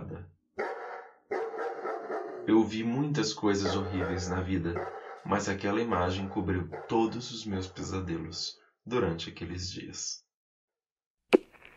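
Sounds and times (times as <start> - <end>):
dog barks: 0.6 - 2.5, 3.5 - 7.4
speech: 2.5 - 10.2.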